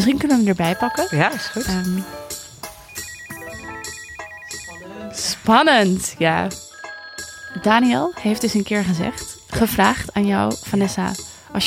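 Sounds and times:
speech: 0.0s - 2.4s, 5.2s - 6.6s, 7.6s - 11.6s
iPhone ringtone: 0.6s - 5.3s, 6.5s - 8.9s.

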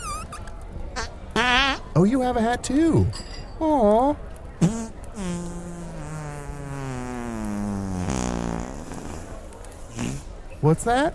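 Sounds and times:
long buzzy fart: 0.0s - 1.8s, 4.6s - 10.3s
speech: 1.4s - 5.4s, 10.6s - 11.1s.

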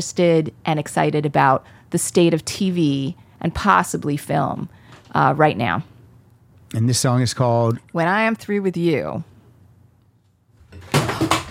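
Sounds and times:
speech: 0.0s - 5.9s, 6.7s - 9.3s
bumped piece of equipment wobbling and clattering: 10.6s - 11.5s.

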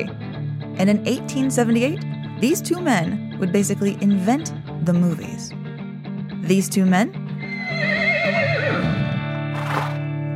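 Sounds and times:
speech: 0.8s - 5.6s, 6.4s - 8.0s
horse neighing: 7.4s - 10.0s.

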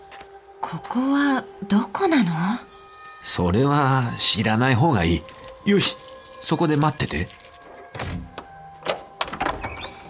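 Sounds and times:
speech: 0.7s - 7.4s
keys clinking: 5.2s - 7.9s.

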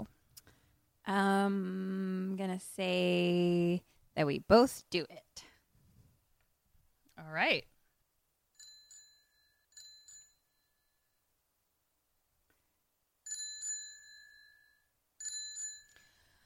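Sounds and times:
speech: 1.1s - 5.2s, 7.2s - 7.7s
bicycle-style bell rung to award points in a quiz game: 8.6s - 10.9s, 13.3s - 16.2s.

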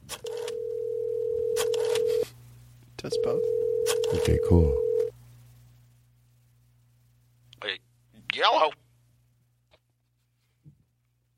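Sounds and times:
steady telephone tone from a vintage phone as a call is dialed: 0.4s - 2.2s, 3.1s - 5.1s
speech: 3.0s - 4.9s.

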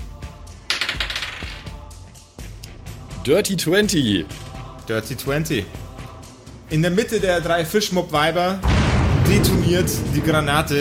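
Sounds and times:
dice rolling across a hard tabletop in a game: 0.7s - 1.7s
speech: 3.2s - 5.8s, 6.7s - 10.7s.

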